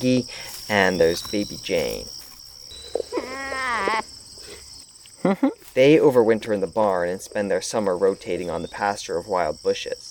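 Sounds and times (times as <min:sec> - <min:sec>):
speech: 0:00.0 - 0:02.2, 0:05.2 - 0:10.0
goat bleating: 0:03.1 - 0:04.0.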